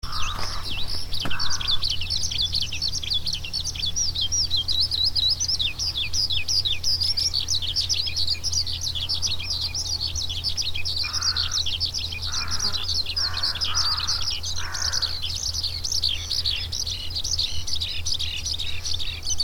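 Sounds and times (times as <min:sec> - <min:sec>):
skylark: 0:00.0 - 0:19.4.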